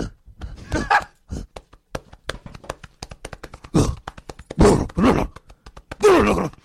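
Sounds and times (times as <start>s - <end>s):
person imitating gorilla grunts and hoots: 0.0s - 1.6s, 3.7s - 6.6s
person pounding their chest imitating a gorilla: 0.0s - 6.6s.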